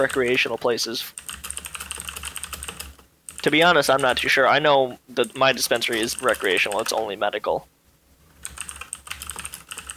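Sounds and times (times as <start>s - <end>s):
speech: 0.0s - 1.4s, 3.4s - 7.7s
typing on a computer keyboard: 1.2s - 4.1s, 5.8s - 7.0s, 8.4s - 9.9s.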